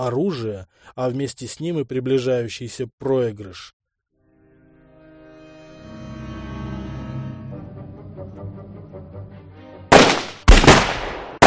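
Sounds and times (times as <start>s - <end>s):
speech: 0.0s - 3.8s
sustained tonal musical passage: 4.2s - 9.9s
soldiers firing gunshots in volleys: 9.9s - 11.4s.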